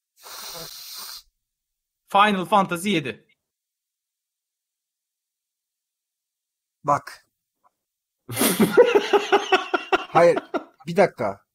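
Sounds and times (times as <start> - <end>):
long deep breath drawn in: 0.2 - 1.3
speech: 2.1 - 3.3, 6.8 - 7.2, 8.3 - 11.4
laughter: 8.3 - 10.8.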